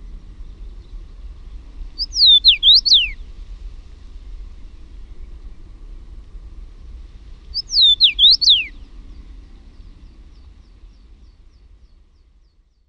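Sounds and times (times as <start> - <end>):
common rosefinch whistled phrase: 2.0 - 3.2, 7.6 - 8.8.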